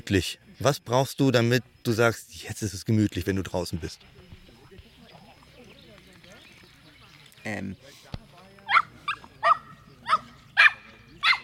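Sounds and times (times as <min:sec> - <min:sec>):
speech: 0:00.1 - 0:04.2, 0:07.4 - 0:08.1
dog barking in sharp yaps: 0:08.7 - 0:11.4.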